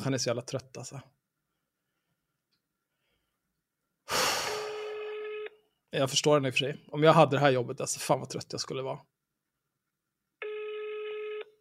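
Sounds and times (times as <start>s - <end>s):
speech: 0.0s - 1.2s, 5.9s - 9.1s
telephone ringing with a steady electronic tone: 4.7s - 5.6s, 10.4s - 11.6s.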